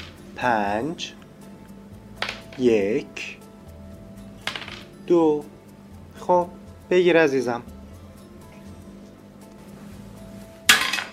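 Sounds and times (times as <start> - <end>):
speech: 0.4 - 1.2, 2.6 - 3.4, 5.1 - 5.6, 6.2 - 7.7
die clacking on a hard board in a board game: 2.2 - 2.6, 4.5 - 4.9.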